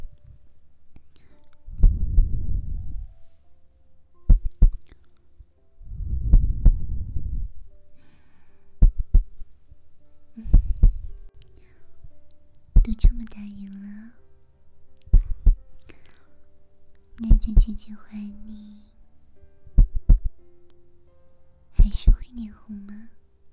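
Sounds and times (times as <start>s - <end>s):
heartbeat of low soft thuds: 1.8s - 3.1s, 4.3s - 4.8s, 5.9s - 7.6s, 8.8s - 9.4s, 10.5s - 11.1s, 15.2s - 15.6s, 17.3s - 17.8s, 19.7s - 20.4s
speech: 17.7s - 18.9s, 22.4s - 23.2s.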